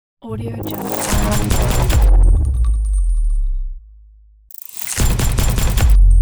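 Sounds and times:
weapon logo reveal sound: 0:00.6 - 0:03.2, 0:04.5 - 0:06.1.

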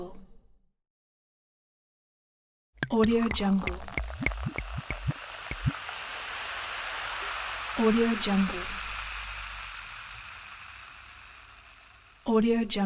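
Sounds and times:
person drinking Coke: 0:02.8 - 0:12.7.

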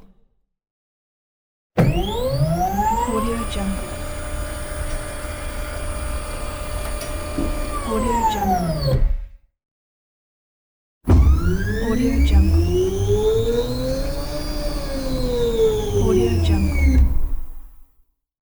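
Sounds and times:
large servo motor: 0:01.9 - 0:08.9, 0:11.1 - 0:17.8.

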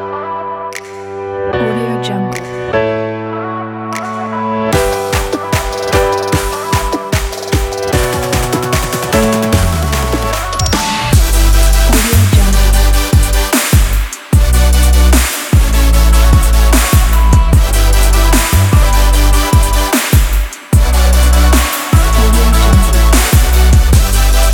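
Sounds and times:
future bass music: 0:00.8 - 0:24.5.

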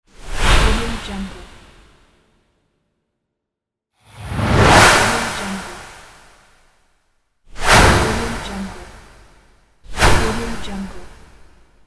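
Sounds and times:
whoosh swoosh: 0:04.0 - 0:06.7, 0:07.5 - 0:10.4.

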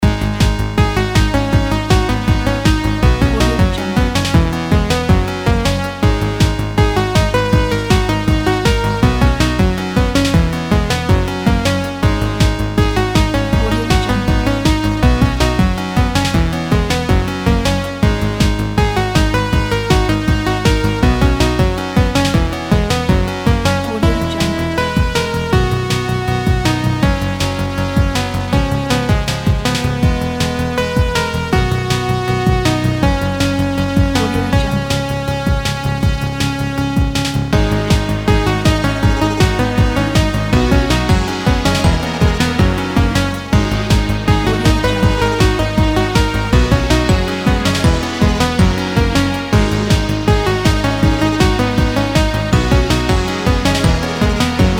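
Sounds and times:
classic retro game music loop: 0:00.0 - 0:54.7.

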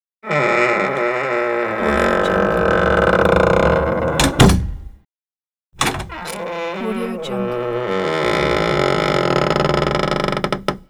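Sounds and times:
squeaky door opening and closing: 0:00.2 - 0:05.0, 0:05.8 - 0:10.8.

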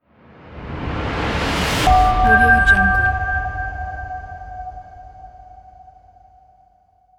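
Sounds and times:
digital opening logo sound: 0:01.9 - 0:03.4.

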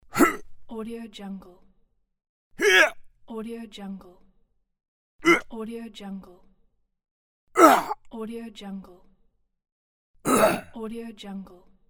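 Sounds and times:
man grunting in struggle: 0:00.2 - 0:00.4, 0:02.6 - 0:03.0, 0:05.2 - 0:05.5, 0:07.6 - 0:08.0, 0:10.3 - 0:10.7.

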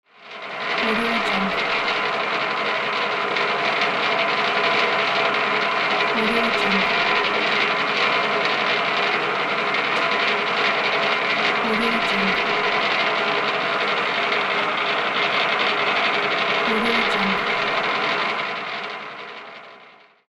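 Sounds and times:
saw mill general ambience: 0:00.4 - 0:19.6.

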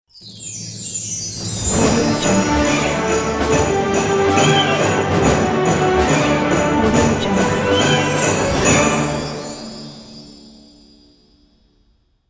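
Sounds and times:
epic orchestral Christmas ident music: 0:01.6 - 0:10.2.

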